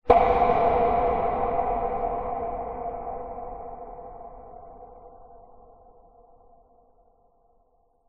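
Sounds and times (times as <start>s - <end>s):
cinematic horror bang with big reverb: 0.0s - 6.3s.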